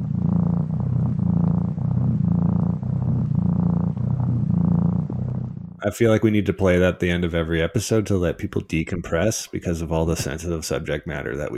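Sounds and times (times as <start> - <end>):
mountain lion purring: 0.0 - 5.9
speech: 5.8 - 11.5.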